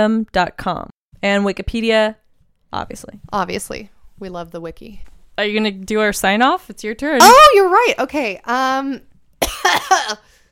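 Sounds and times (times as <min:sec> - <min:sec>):
speech: 0:00.0 - 0:10.3
person with laryngitis coughing harshly open-mouthed: 0:09.4 - 0:10.3.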